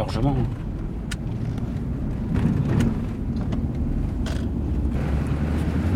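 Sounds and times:
engine and road rumble inside a moving police patrol car: 0.0s - 5.9s.

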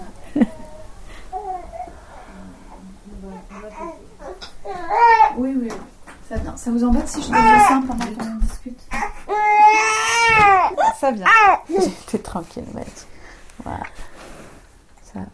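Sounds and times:
newborn baby babbling and fussing: 0.7s - 5.4s, 8.9s - 11.9s
speech: 6.7s - 9.1s, 11.1s - 13.1s.

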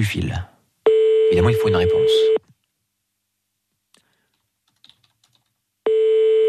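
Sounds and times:
speech: 0.0s - 0.5s, 1.3s - 2.5s
steady electronic telephone tone of a radio switchboard dialling: 0.9s - 2.4s, 5.9s - 6.4s.

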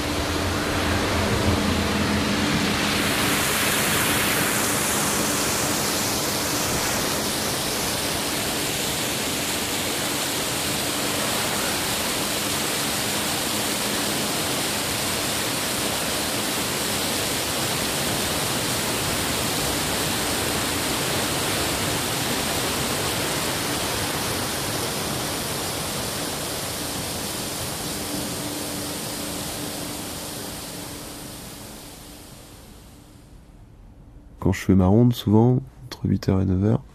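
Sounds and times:
Mediterranean sea waves: 0.0s - 33.2s
speech: 34.5s - 36.9s.

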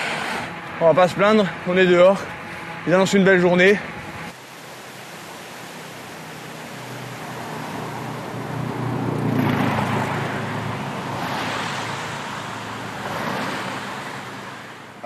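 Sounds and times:
cars swishing past in road traffic: 0.0s - 0.9s, 6.6s - 15.0s
constant low road traffic rumble: 0.0s - 15.0s
speech: 0.8s - 4.0s.

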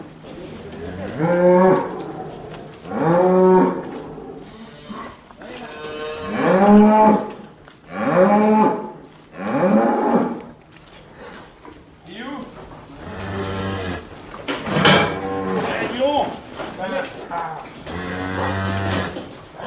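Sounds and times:
calf separated from its mother mooing: 0.7s - 10.5s, 13.0s - 14.1s, 14.7s - 16.0s, 17.3s - 19.6s.

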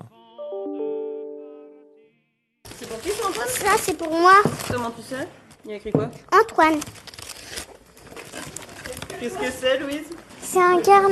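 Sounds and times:
gift wrapping paper crinkling and ripping as children open presents: 2.7s - 5.2s, 6.4s - 10.5s
speech: 3.3s - 7.1s, 9.2s - 11.0s.

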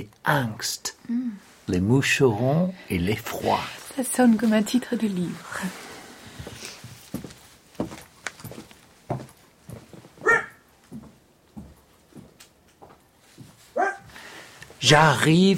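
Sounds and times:
speech: 0.0s - 5.9s, 14.9s - 15.5s
dog barking: 10.2s - 10.6s, 13.7s - 14.1s.

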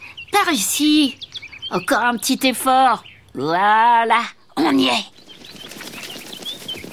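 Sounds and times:
speech: 0.4s - 5.1s
blackbird flapping wings bursting into flight: 5.1s - 6.9s.

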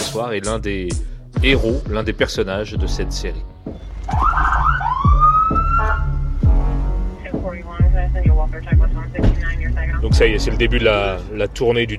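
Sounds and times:
speech: 0.1s - 4.4s, 8.6s - 11.9s
heavy low thumps: 0.8s - 11.9s
police car siren being tested in short bursts: 4.1s - 6.2s.

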